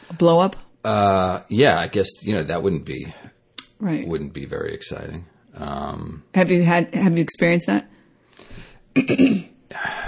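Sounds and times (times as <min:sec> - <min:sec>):
speech: 0:00.1 - 0:07.9, 0:09.0 - 0:10.0
loud harsh throaty cough: 0:09.0 - 0:09.6.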